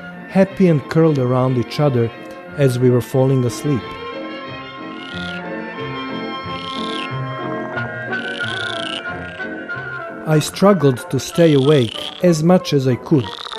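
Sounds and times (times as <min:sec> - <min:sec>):
speech: 0:00.3 - 0:04.0, 0:10.3 - 0:13.5
higher trilling bursts of frogs: 0:04.8 - 0:05.5, 0:06.4 - 0:07.2, 0:08.1 - 0:09.7, 0:11.2 - 0:13.5
dense chorus of frogs croaking: 0:04.8 - 0:05.6, 0:06.4 - 0:09.9, 0:11.2 - 0:13.5.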